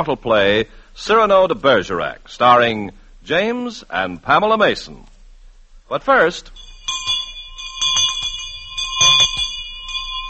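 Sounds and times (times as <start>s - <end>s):
speech: 0.0s - 5.1s, 5.9s - 7.2s
bell ringing in a radio advertisement: 6.5s - 10.2s.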